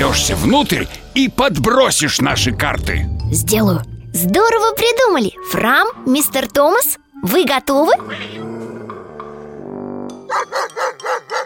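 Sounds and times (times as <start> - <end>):
speech: 0.2 - 8.5
dog barking while chasing a cat: 10.3 - 11.4.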